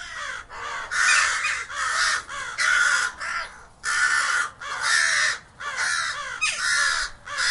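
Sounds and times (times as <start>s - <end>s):
crows cawing: 0.0s - 7.4s.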